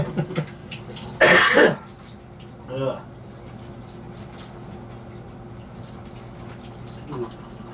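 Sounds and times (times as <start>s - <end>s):
person coughing from a cold: 1.2s - 1.8s.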